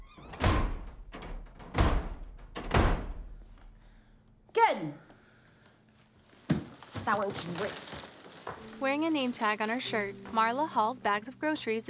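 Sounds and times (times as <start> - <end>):
door slammed shut hard by someone who stormed upstairs: 0.0 - 3.4
speech: 4.7 - 5.1, 7.1 - 8.0, 8.8 - 11.8.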